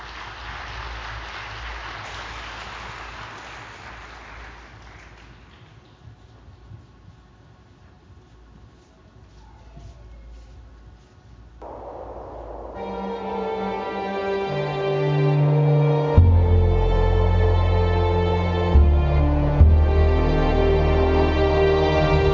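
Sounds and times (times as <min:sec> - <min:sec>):
audience applause welcoming a choir onto the stage: 0:00.0 - 0:05.6
low hum: 0:11.6 - 0:22.3.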